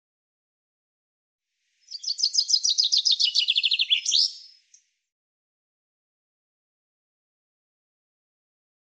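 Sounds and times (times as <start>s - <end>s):
common chaffinch song: 1.7s - 5.0s.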